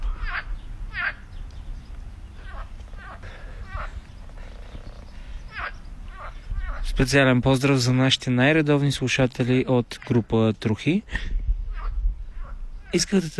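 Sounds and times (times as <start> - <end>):
several frogs croaking in a chorus: 0.0 - 1.4, 2.3 - 7.0, 11.7 - 13.0
steady outdoor hum: 0.0 - 13.3
speech: 7.0 - 11.4, 12.9 - 13.3.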